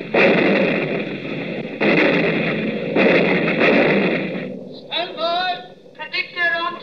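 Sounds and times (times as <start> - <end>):
gun firing on command: 0.0 - 6.4.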